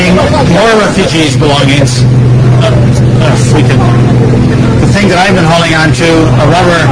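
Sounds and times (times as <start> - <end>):
heavy truck engine droning while driving fast on a road: 0.0 - 6.8
indistinct voices murmuring: 0.0 - 6.8
road noise: 0.0 - 6.8
speech: 0.3 - 6.8.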